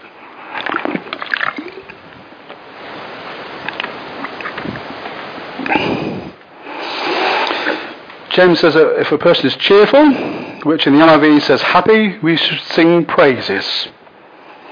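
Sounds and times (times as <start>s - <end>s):
person slurping and sipping a drink: 0.5s - 2.0s, 5.6s - 8.0s
person swallowing: 0.6s - 2.0s, 5.6s - 6.5s
speech: 8.4s - 14.0s.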